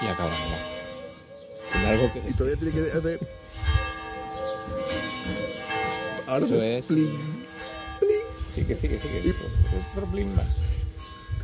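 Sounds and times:
church bell tolling: 0:00.0 - 0:11.4
speech: 0:00.1 - 0:00.7, 0:01.9 - 0:03.5, 0:06.3 - 0:07.5, 0:08.6 - 0:10.7.

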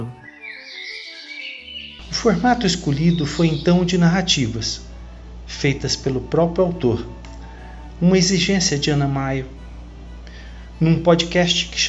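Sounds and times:
birds singing in a chorus of chirps and warbles: 0:00.0 - 0:04.7
soft low musical tone humming: 0:00.0 - 0:11.8
speech: 0:02.2 - 0:04.9, 0:05.5 - 0:07.2, 0:08.0 - 0:09.6, 0:10.8 - 0:11.8.

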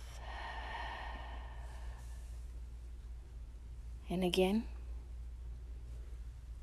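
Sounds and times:
soft exhale through the mouth: 0:00.0 - 0:02.4
deep inhale through the nose: 0:00.0 - 0:02.5
speech: 0:04.1 - 0:04.8.

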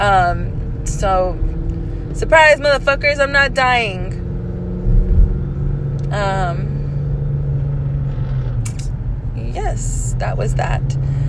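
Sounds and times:
speech: 0:00.0 - 0:01.5, 0:02.1 - 0:04.1, 0:06.1 - 0:06.6, 0:09.6 - 0:11.2
low engine rumble inside a moving car: 0:00.0 - 0:11.2.

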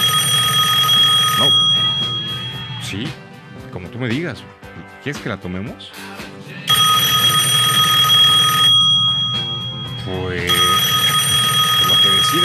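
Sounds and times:
phone ringing with incoming call: 0:00.0 - 0:03.2, 0:06.7 - 0:12.4
speech: 0:02.9 - 0:03.2, 0:04.0 - 0:06.2, 0:10.1 - 0:10.6.

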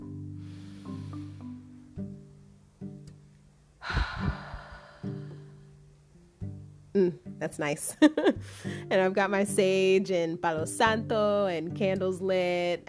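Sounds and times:
deep breath taken before a tarot reading: 0:00.4 - 0:01.8, 0:03.8 - 0:05.7
speech: 0:07.0 - 0:12.8.

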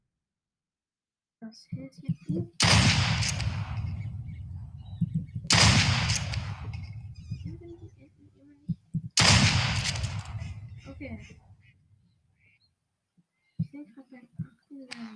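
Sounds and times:
quiet duck hunting video game sounds: 0:01.4 - 0:15.1
speech: 0:01.5 - 0:03.8, 0:09.6 - 0:11.5, 0:13.8 - 0:15.1
gunshots in a duck hunting video game: 0:02.6 - 0:07.8, 0:09.2 - 0:11.4.

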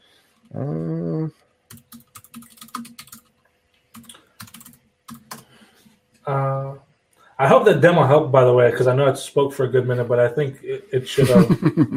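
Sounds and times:
person humming: 0:00.5 - 0:01.4
speech: 0:00.5 - 0:01.4, 0:07.5 - 0:11.9
typing on a computer keyboard: 0:01.7 - 0:05.5
laughter: 0:11.1 - 0:11.9.

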